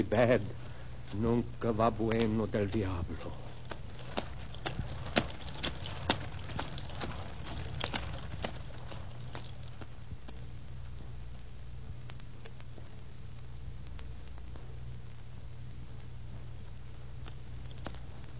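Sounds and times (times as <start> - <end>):
speech: 0.0 - 3.5
donkey hooves clip-clopping: 0.0 - 18.3
rolling carriage pulled by donkeys rumbling: 1.6 - 10.4.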